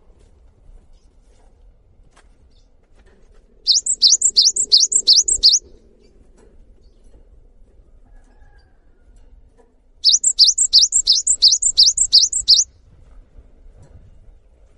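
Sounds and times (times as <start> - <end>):
cinereous tit singing long song: 3.7 - 5.6, 10.0 - 12.7.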